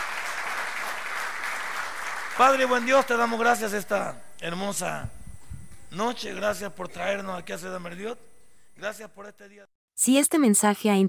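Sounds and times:
audience applauding: 0.0s - 3.4s
speech: 2.4s - 5.2s, 5.9s - 11.0s.

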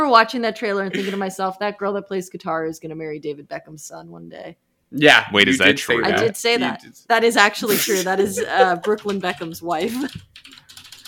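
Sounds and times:
speech: 0.0s - 11.0s
laughter: 0.9s - 1.2s, 7.6s - 10.1s
computer keyboard typing furiously: 8.6s - 11.0s.

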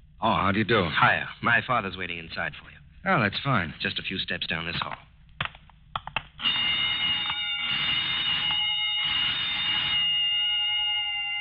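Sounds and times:
speech: 0.2s - 5.1s
burglar alarm ringing during a test: 6.4s - 11.3s.

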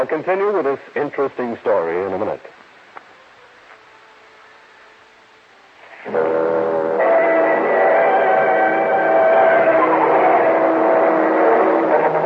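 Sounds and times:
speech: 0.0s - 2.6s
car engine roaring past on a street: 6.1s - 12.2s.

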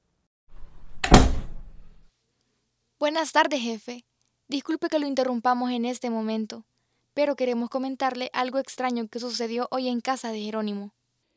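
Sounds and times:
office door creaking open: 0.5s - 2.1s
office door solid thunk: 0.6s - 2.0s
speech: 3.0s - 11.0s.

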